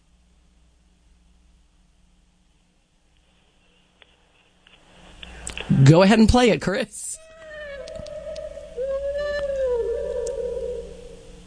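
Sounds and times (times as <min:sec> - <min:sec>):
faint hum: 0:00.0 - 0:11.4
speech: 0:05.8 - 0:07.2
drawn-out tonal owl call: 0:07.2 - 0:11.4.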